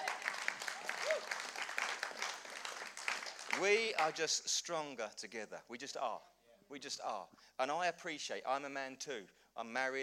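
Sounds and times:
audience applause: 0.0s - 3.8s
speech: 3.6s - 10.0s.

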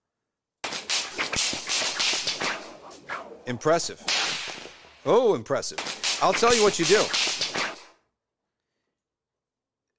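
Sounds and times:
whip cracking: 0.6s - 8.0s
steady hissing noise: 0.7s - 7.9s
speech: 3.5s - 4.1s, 5.0s - 7.4s.

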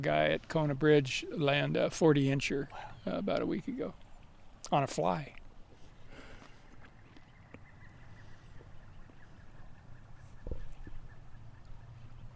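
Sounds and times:
speech: 0.0s - 4.0s, 4.6s - 5.4s
pileated woodpecker calling: 2.3s - 12.3s.

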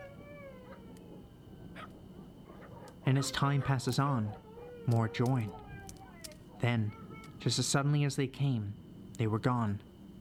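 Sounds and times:
faint dog-like howling from the woods at night: 0.0s - 7.4s
speech: 3.1s - 5.6s, 6.6s - 9.9s.

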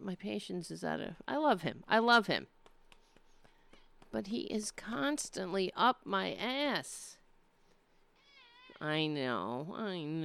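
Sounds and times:
speech: 0.1s - 2.6s, 4.1s - 7.2s, 8.8s - 10.2s
male cat meowing: 8.2s - 8.8s.

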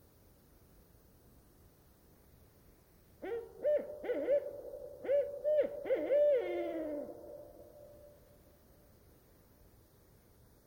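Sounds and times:
lone barred owl hooting at night in old-growth rain forest: 3.2s - 8.2s.

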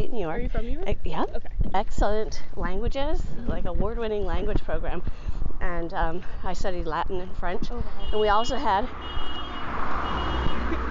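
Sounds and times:
low rumbling outdoor background: 0.0s - 9.0s
speech: 0.2s - 10.3s
car alarm beeping, set off by people walking past: 8.0s - 10.8s.

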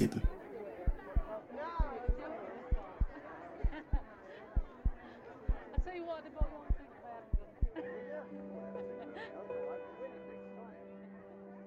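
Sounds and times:
heartbeat sound effect thumping: 0.0s - 4.0s, 4.6s - 7.8s
crowd chatter with overlapping voices: 0.0s - 11.0s.

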